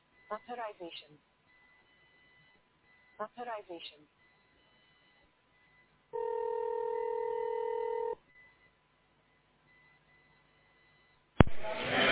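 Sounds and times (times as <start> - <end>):
speech: 0.3 - 1.4, 3.2 - 4.2
long electronic telephone tone during a call transfer: 6.2 - 8.6
burst of telephone line noise: 11.4 - 12.0.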